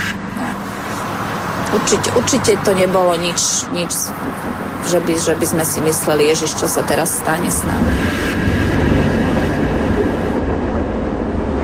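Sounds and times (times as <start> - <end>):
tram cars rushing downhill along rails rumbling and creaking: 0.0 - 11.6
speech: 1.7 - 8.6.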